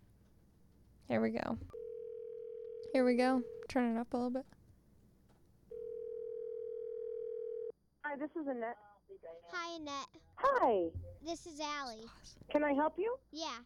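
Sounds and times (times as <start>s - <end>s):
speech: 1.1s - 1.8s, 2.9s - 4.6s, 8.1s - 13.6s
electronic ringing tone on a phone line: 1.8s - 3.7s, 5.7s - 7.7s.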